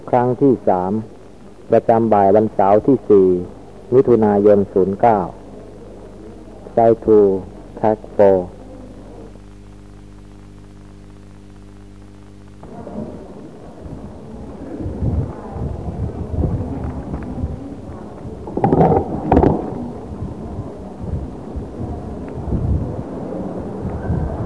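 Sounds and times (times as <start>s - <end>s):
speech: 0.1s - 1.1s, 1.7s - 5.4s, 6.8s - 8.6s
strong stormy wind roaring and buffeting: 13.7s - 24.4s.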